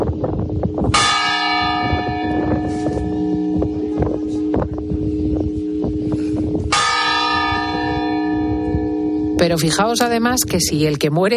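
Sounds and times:
faint wind: 0:00.0 - 0:11.3
church bell tolling a death knell: 0:00.9 - 0:10.3
speech: 0:09.6 - 0:11.3.

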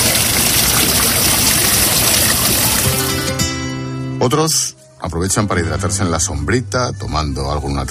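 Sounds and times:
water splashing and pouring from a public fountain: 0:00.0 - 0:03.3
speech: 0:04.2 - 0:07.8.

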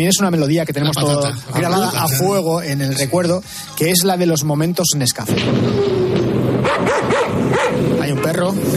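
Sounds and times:
music: 0:00.0 - 0:08.7
speech: 0:00.0 - 0:08.7
dog barking: 0:06.6 - 0:07.9.

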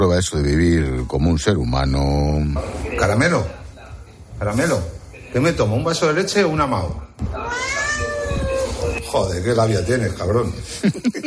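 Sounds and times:
speech: 0:00.0 - 0:03.6, 0:04.4 - 0:07.3, 0:09.1 - 0:11.2
cat meowing: 0:07.4 - 0:09.0
laughter: 0:10.6 - 0:11.2.

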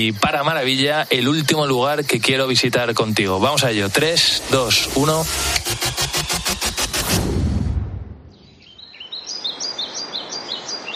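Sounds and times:
soft outdoor hush: 0:00.0 - 0:05.6
speech: 0:00.0 - 0:05.9
loud pulsing rumble: 0:03.4 - 0:08.3.

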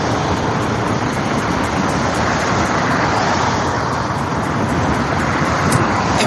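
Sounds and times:
motorway traffic roaring as heard from homes close to the road: 0:00.0 - 0:06.2.

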